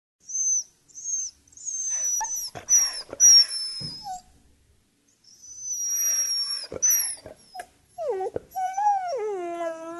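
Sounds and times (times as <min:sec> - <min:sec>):
dog whistling: 0:00.3 - 0:04.3, 0:05.3 - 0:09.3.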